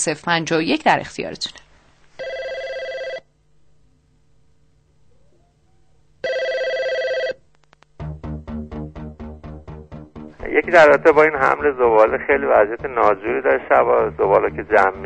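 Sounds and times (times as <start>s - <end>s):
speech: 0.0s - 1.6s, 10.7s - 15.0s
telephone ringing: 2.2s - 3.3s, 6.2s - 7.5s
rapid rhythmic telephone line tones: 8.9s - 15.0s.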